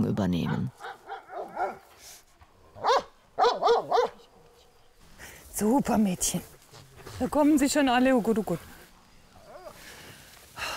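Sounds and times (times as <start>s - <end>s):
speech: 0.0s - 1.0s, 5.6s - 6.5s, 7.2s - 8.7s
livestock guardian dogs barking: 0.4s - 2.0s, 2.8s - 4.3s.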